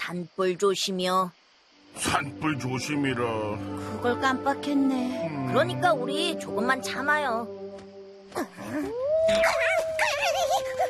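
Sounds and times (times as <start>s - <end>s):
speech: 0.1s - 1.4s, 2.0s - 7.6s, 8.3s - 10.8s
wolf howling at a campsite in the forest: 8.6s - 10.8s.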